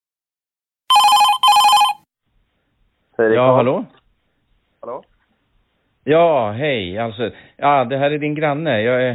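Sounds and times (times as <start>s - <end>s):
telephone ringing: 0.9s - 2.0s
speech: 3.2s - 4.0s, 6.0s - 9.1s.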